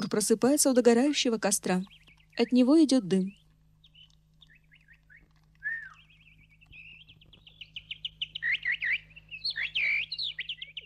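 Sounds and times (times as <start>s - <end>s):
birds chirping in a small wood by the sea shore: 0.0s - 10.8s
faint low hum: 0.0s - 10.8s
speech: 0.1s - 3.4s
man whistling imitating birds: 5.6s - 6.0s.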